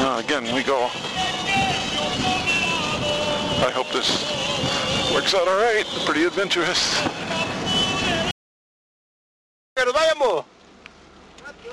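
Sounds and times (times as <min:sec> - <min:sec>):
truck engine and road noise on a narrow mountain road: 0:00.0 - 0:08.3, 0:09.8 - 0:11.7
wind buffeting: 0:00.0 - 0:08.3
speech: 0:00.2 - 0:07.6, 0:09.8 - 0:10.5.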